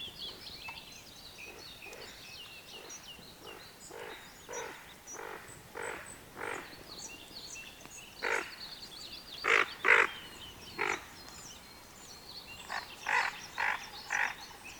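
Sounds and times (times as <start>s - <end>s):
greater scaup calling with rough nasal croaks: 1.5s - 6.8s, 8.2s - 8.6s, 9.4s - 11.1s, 12.6s - 14.7s.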